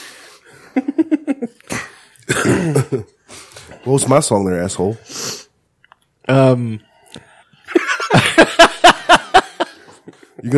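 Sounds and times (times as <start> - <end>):
throat-clearing hacks: 1.7 - 3.0
harsh raspy coughs: 1.7 - 3.2
speech: 2.6 - 3.2, 3.9 - 5.3, 6.3 - 7.2
laughter: 7.7 - 10.5.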